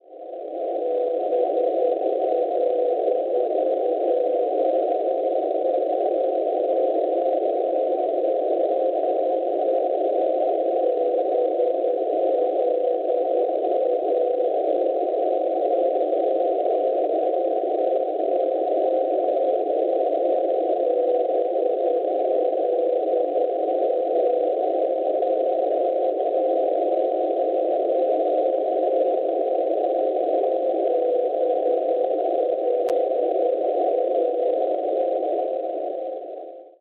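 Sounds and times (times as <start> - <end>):
NDB radio beacon signal at 350 kHz in Cerrione Italia: 0.4 - 36.7.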